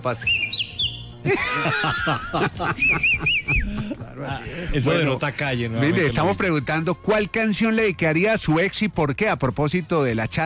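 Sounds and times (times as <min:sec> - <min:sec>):
speech: 0:00.0 - 0:00.5, 0:01.2 - 0:10.4
person whistling: 0:00.2 - 0:01.1
laughter: 0:01.2 - 0:04.4.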